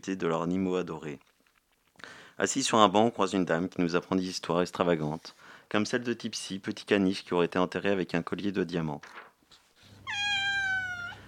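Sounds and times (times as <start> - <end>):
speech: 0.0 - 1.3, 2.0 - 9.3
cat meowing at a pet cemetery: 10.0 - 11.2.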